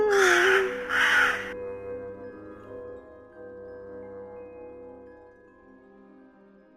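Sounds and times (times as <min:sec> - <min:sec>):
crow cawing: 0:00.1 - 0:01.5.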